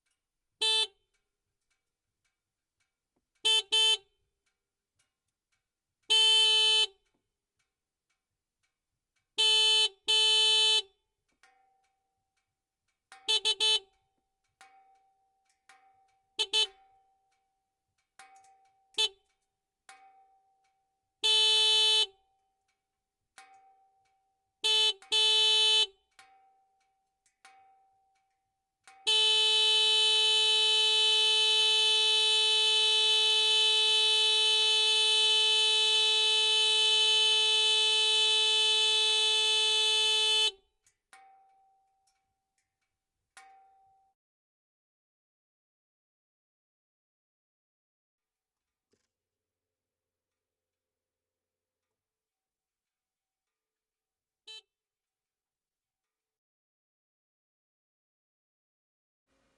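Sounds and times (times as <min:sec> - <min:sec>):
Yamaha Kodiak horn: 0:00.6 - 0:01.0, 0:03.4 - 0:04.2, 0:06.1 - 0:07.0, 0:09.4 - 0:11.0, 0:13.3 - 0:13.9, 0:16.4 - 0:16.8, 0:19.0 - 0:19.2, 0:21.2 - 0:22.2, 0:24.6 - 0:26.0, 0:29.0 - 0:40.7, 0:54.5 - 0:54.7.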